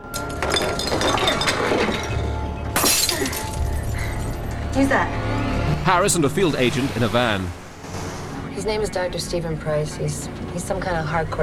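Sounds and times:
glass wine bottle smashing into tinkling shards: 0:00.0 - 0:04.6
rumbling noise and clatter: 0:00.0 - 0:11.4
speech: 0:04.8 - 0:05.2, 0:05.8 - 0:07.6, 0:08.6 - 0:11.4.

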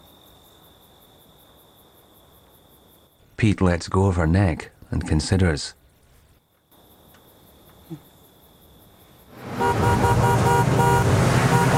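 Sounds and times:
faint insect-like whine: 0:00.0 - 0:09.4
speech: 0:03.4 - 0:05.8
truck racing through town and skidding to a halt: 0:09.4 - 0:11.7.

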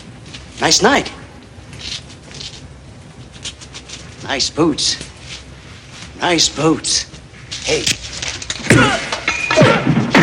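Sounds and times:
speech: 0:00.6 - 0:01.2, 0:04.2 - 0:05.1, 0:06.2 - 0:09.1
headbutt and forearm smash blows thwacking and thudding in a fight: 0:08.0 - 0:10.2.

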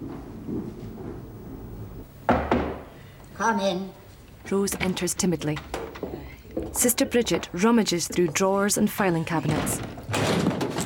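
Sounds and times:
low rumbling noise: 0:00.0 - 0:10.8
knocks on a ward office door: 0:02.3 - 0:02.9
speech: 0:03.4 - 0:06.1, 0:06.8 - 0:10.6.

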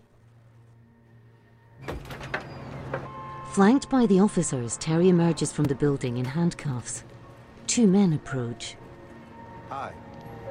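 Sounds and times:
apartment door closing: 0:01.8 - 0:03.1
speech: 0:03.6 - 0:07.1, 0:07.7 - 0:08.8, 0:09.7 - 0:10.0.

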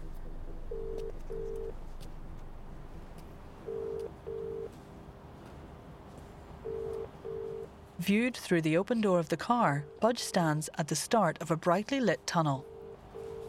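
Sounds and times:
faint noise: 0:00.0 - 0:13.4
ringback tone of an outgoing phone call from a phone held to the ear: 0:00.7 - 0:01.7, 0:03.7 - 0:04.7, 0:06.6 - 0:07.7, 0:12.6 - 0:13.4
speech: 0:08.0 - 0:12.7.

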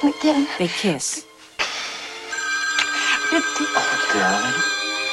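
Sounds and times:
speech: 0:00.2 - 0:01.3, 0:03.3 - 0:04.8
telephone bell ringing: 0:02.3 - 0:05.1.

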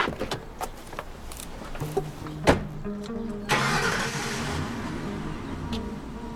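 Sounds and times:
car engine cranking and catching: 0:01.2 - 0:06.3
car engine revving as the car pulls away down a street: 0:02.8 - 0:06.3.

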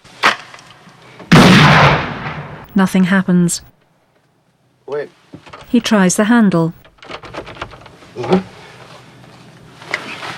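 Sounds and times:
gunshot fired at a door: 0:01.3 - 0:02.7
speech: 0:02.8 - 0:03.8, 0:05.7 - 0:06.8, 0:08.2 - 0:08.5.

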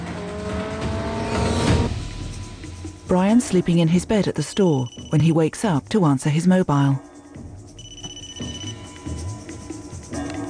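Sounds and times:
broad roar of road and traffic noise: 0:00.0 - 0:02.0
cars speeding past at high revs on a multi-lane road: 0:00.0 - 0:02.0
speech: 0:03.1 - 0:07.1.

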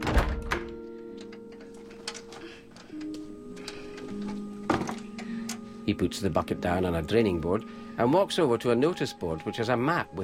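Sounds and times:
workshop door being closed with thuds and clicks: 0:00.0 - 0:03.2, 0:04.0 - 0:05.2
faint steady tonal hum: 0:00.7 - 0:10.2
speech: 0:05.9 - 0:10.2.

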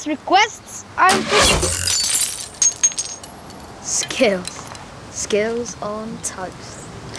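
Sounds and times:
speech: 0:00.0 - 0:02.0, 0:03.9 - 0:04.6, 0:05.2 - 0:06.8
ceramic piggy bank smashing: 0:01.1 - 0:03.5
coins tumbling and being gathered up: 0:01.1 - 0:04.7.

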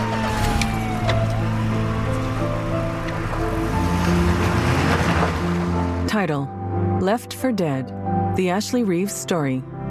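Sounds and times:
police car engine rumbling: 0:00.1 - 0:06.0
speech: 0:06.2 - 0:09.7.

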